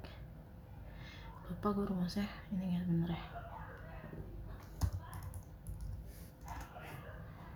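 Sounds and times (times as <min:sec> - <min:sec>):
low hum: 0:00.0 - 0:07.5
speech: 0:01.5 - 0:04.3
typing on a computer keyboard: 0:04.7 - 0:06.7.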